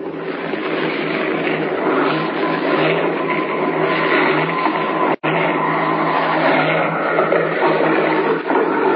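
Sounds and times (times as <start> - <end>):
airplane engine drone as a plane lands beside railway tracks: 0.0 - 8.9.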